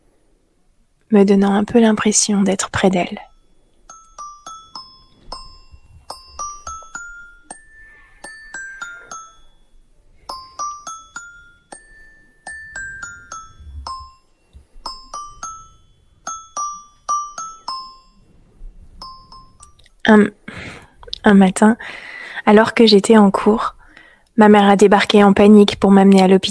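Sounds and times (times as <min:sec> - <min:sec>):
faint low rumble: 0:00.0 - 0:26.5
speech: 0:01.1 - 0:03.3, 0:21.3 - 0:23.8, 0:24.4 - 0:26.5
music-box style melody from a squeezed blue plush rabbit toy: 0:02.6 - 0:20.4.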